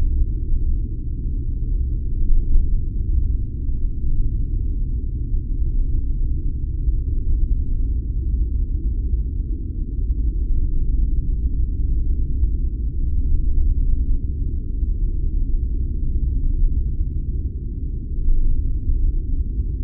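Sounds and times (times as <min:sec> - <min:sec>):
deep steady spaceship drone: 0:00.0 - 0:19.8.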